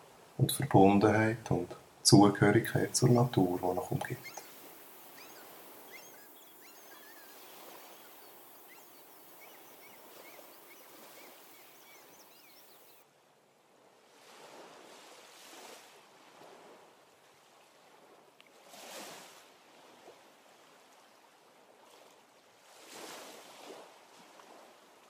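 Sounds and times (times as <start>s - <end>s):
ocean waves and surf: 0.0s - 13.0s, 13.7s - 25.0s
speech: 0.4s - 4.4s.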